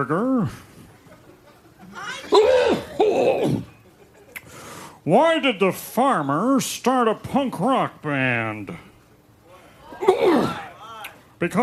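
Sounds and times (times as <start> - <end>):
speech: 0.0 - 0.7, 5.0 - 8.9, 11.4 - 11.6
person coughing into the microphone: 2.3 - 3.7, 10.0 - 10.6.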